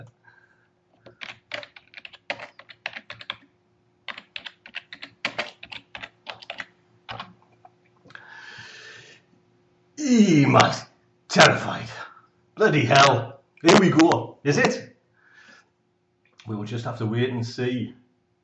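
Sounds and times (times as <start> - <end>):
faint steady hum: 0.0 - 18.4
typing on a computer keyboard: 1.0 - 3.5, 4.1 - 7.4
speech: 10.1 - 12.0, 12.6 - 14.9, 16.5 - 18.0.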